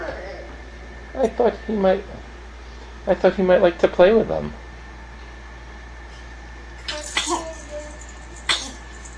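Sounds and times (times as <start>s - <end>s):
speech: 1.2s - 2.1s, 3.1s - 4.6s
faint little baby vocal sounds: 6.8s - 9.0s
baby sneezing: 8.4s - 8.9s.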